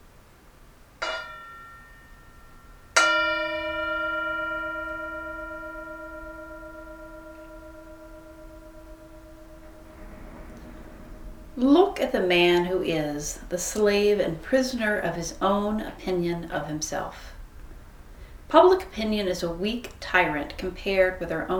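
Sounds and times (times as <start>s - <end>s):
Tibetan singing bowl tapped and struck: 1.0s - 13.0s
speech: 11.6s - 17.3s, 18.5s - 21.5s.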